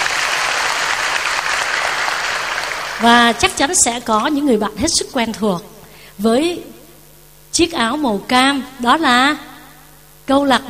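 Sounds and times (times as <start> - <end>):
audience applauding university and school students: 0.0 - 3.1
speech: 3.0 - 6.7, 7.6 - 9.5, 10.3 - 10.6.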